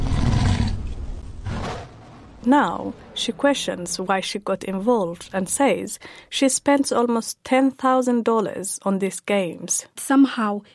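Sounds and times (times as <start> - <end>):
lion roar from a virtual gift in an online game: 0.0 - 2.1
speech: 2.4 - 10.7.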